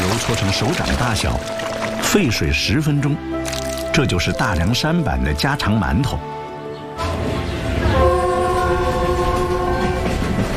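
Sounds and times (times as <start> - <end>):
speech: 0.2 - 6.4
long sustained horn blast: 7.0 - 10.5
train rolling by on a railway: 7.0 - 10.5.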